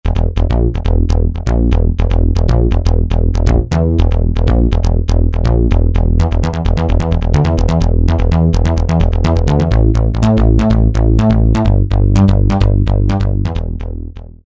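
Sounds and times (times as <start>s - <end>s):
Roland SR-JV80-01 pop house synth bass: 0.0s - 14.4s.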